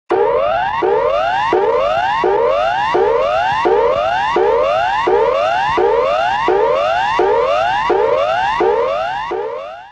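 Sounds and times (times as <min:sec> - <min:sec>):
standard emergency warning signal: 0:00.1 - 0:09.8.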